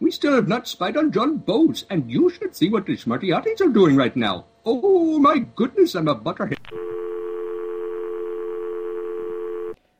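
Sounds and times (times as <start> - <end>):
speech: 0.1 - 6.8
Skype call dial tone: 6.6 - 9.8.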